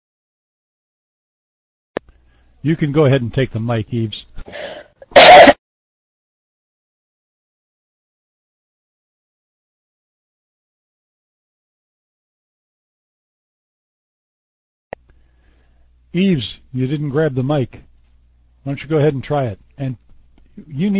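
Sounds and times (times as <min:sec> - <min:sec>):
speech: 0:02.6 - 0:05.5, 0:16.1 - 0:17.9, 0:18.6 - 0:20.0, 0:20.6 - 0:20.9
person giving a loud rough cough: 0:04.5 - 0:05.6.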